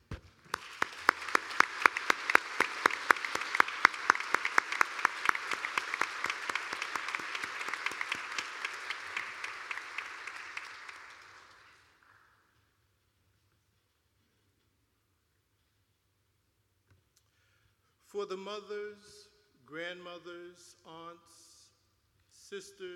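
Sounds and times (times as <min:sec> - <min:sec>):
church audience applauding: 0:00.4 - 0:12.3
speech: 0:18.2 - 0:21.5, 0:22.5 - 0:22.9.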